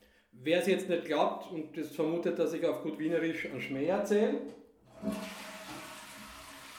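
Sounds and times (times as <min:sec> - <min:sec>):
speech: 0:00.4 - 0:05.3
toilet flushing with gurgling clunk and rushing water: 0:04.8 - 0:06.7.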